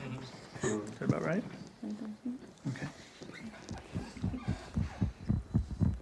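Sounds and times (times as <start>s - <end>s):
speech: 1.0s - 3.1s
transplanted heart beating in a man's chest heard through a stethoscope: 3.5s - 5.9s.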